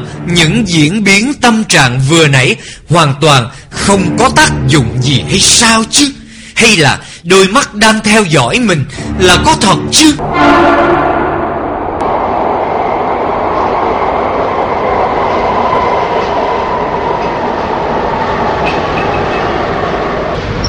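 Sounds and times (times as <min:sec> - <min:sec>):
train pulling into a station: 0:00.0 - 0:02.3, 0:09.0 - 0:20.6
speech: 0:00.2 - 0:11.1
train wheels clattering: 0:15.0 - 0:20.6.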